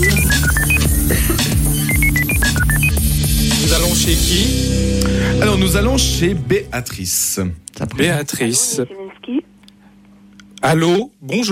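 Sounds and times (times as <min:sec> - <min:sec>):
telephone dialing beeps of a number being entered: 0:00.0 - 0:00.9, 0:01.9 - 0:02.9
loud steady music: 0:00.0 - 0:08.7
speech: 0:05.7 - 0:09.5, 0:10.6 - 0:11.5.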